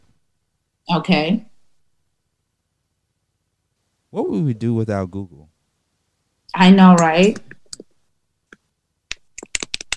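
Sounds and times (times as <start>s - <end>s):
speech: 0.9s - 1.5s, 4.1s - 5.5s, 6.6s - 7.6s
typing on a computer keyboard: 9.1s - 9.9s.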